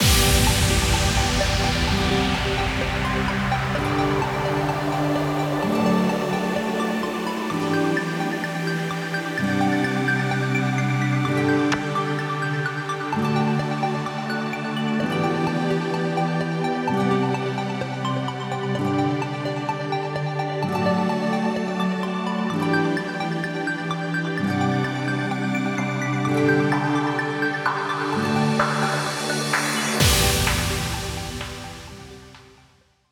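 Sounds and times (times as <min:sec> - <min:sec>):
bass drum: 0:00.0 - 0:05.8, 0:30.0 - 0:32.5
synth pad chords: 0:00.0 - 0:32.8.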